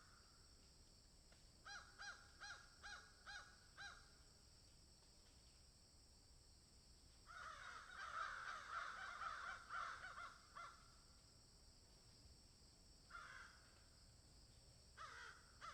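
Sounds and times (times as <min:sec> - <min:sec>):
several crows cawing in a field: 0:01.7 - 0:04.0, 0:07.3 - 0:10.9, 0:13.1 - 0:13.8, 0:15.0 - 0:15.7.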